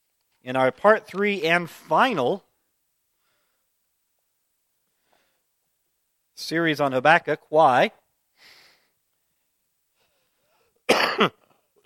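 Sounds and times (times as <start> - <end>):
speech: 0.4 - 2.5, 6.4 - 8.6, 11.2 - 11.4
person coughing harshly during a talk: 10.9 - 11.8.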